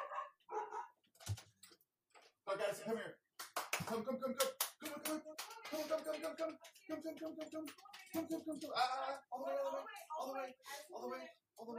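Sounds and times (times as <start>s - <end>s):
dogs barking: 0.0s - 1.0s
speech: 2.5s - 3.2s, 3.9s - 11.7s.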